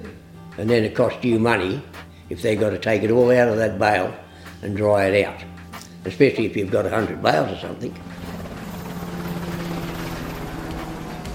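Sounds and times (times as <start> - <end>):
speech: 0.6 - 8.1
helicopter flying with loud steady rotor drone: 6.5 - 11.3.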